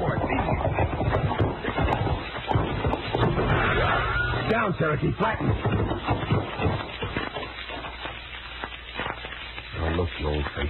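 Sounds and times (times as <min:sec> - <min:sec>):
horse hooves clip-clopping: 0:00.0 - 0:09.5
speech: 0:04.7 - 0:06.0.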